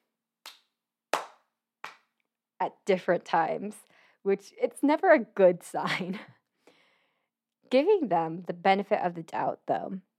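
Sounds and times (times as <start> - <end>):
dancers clapping as part of dance choreography: 0.4 - 2.1
speech: 2.6 - 6.4, 7.7 - 10.1.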